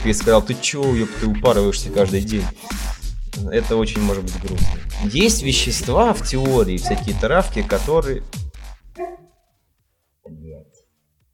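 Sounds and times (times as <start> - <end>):
speech: 0.0 - 8.4
dog barking: 6.8 - 7.3, 9.0 - 9.4.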